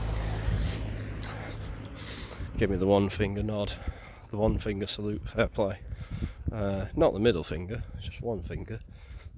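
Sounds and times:
car passing on a road: 0.0s - 4.3s
wind buffeting on the microphone: 0.0s - 9.3s
speech: 2.6s - 9.3s.

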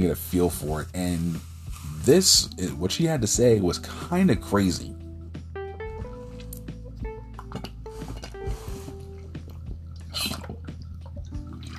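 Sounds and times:
speech: 0.0s - 5.0s
sipping water: 6.0s - 11.7s.

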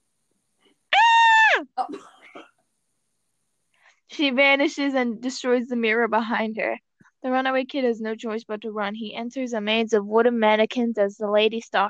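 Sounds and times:
woman screaming: 0.9s - 1.8s
speech: 4.2s - 11.8s.

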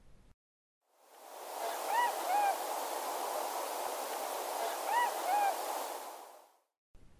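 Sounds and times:
steady rushing background: 1.0s - 6.5s
tundra swans giving plaintive whistled calls: 1.4s - 6.4s.

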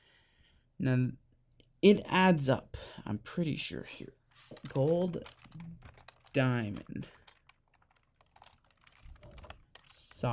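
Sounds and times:
speech: 0.8s - 1.2s, 1.8s - 7.2s, 10.2s - 10.3s
rapid typing on a computer keyboard: 4.5s - 10.2s.

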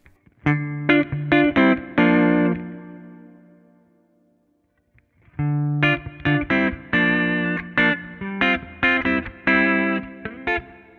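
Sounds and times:
electric guitar through an amplifier in jazz mode with throaty tone: 0.0s - 4.0s, 4.6s - 10.9s.

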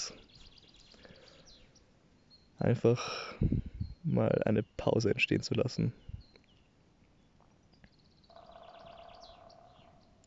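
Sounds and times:
bird chirps: 0.0s - 10.2s
speech: 2.6s - 6.2s
woodpecker drumming: 7.4s - 10.2s.

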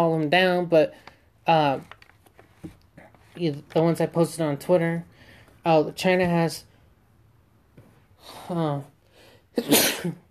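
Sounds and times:
speech: 0.0s - 2.0s, 3.4s - 6.7s, 8.2s - 8.9s, 9.6s - 10.2s
person sneezing: 9.5s - 10.2s.

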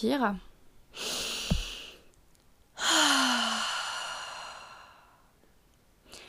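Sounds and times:
deep breaths taken during a relaxation exercise: 0.9s - 2.1s, 2.8s - 5.4s.

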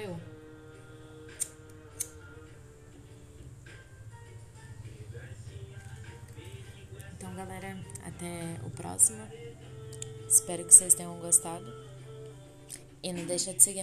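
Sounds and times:
low steady hum: 0.0s - 13.8s
dead lighter clicking without flame: 1.3s - 2.3s
speech: 7.4s - 9.8s, 10.4s - 11.9s, 13.0s - 13.8s.

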